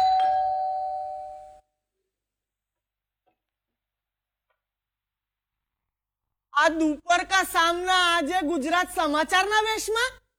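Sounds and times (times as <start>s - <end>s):
electronic doorbell tone at a home's front door: 0.0s - 1.6s
speech: 6.6s - 10.2s.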